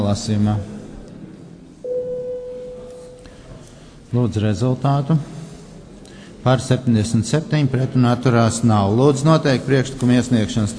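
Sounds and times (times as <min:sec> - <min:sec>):
speech: 0:00.1 - 0:00.8, 0:04.1 - 0:05.4, 0:06.4 - 0:10.7
parliament chamber bell sustained electronic tone before a vote: 0:01.8 - 0:03.4
room hum: 0:01.8 - 0:04.2.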